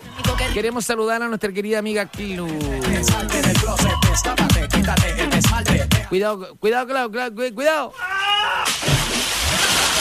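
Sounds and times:
speech: 0.2s - 8.6s
water splashing onto someone's face: 8.6s - 9.9s.

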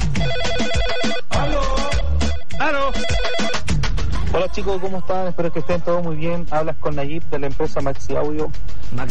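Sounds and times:
phone ringtone for an incoming WhatsApp call: 0.1s - 3.7s
speech: 4.5s - 9.1s.

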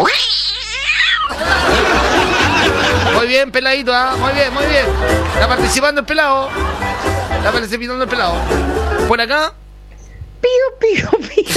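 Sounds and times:
person imitating a possessed cat yowling: 0.0s - 1.3s
laughter: 1.3s - 9.2s, 10.9s - 11.5s
speech: 3.4s - 9.6s, 10.4s - 11.5s.

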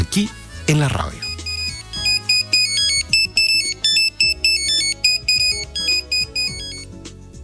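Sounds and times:
speech: 0.2s - 1.3s
Nokia mobile phone ringtone beeping electronic melody: 1.1s - 7.0s.

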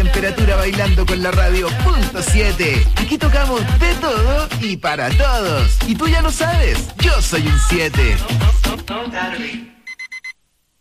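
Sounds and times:
speech: 0.2s - 9.7s
alarm clock beeping with sharp electronic tones: 9.9s - 10.4s.

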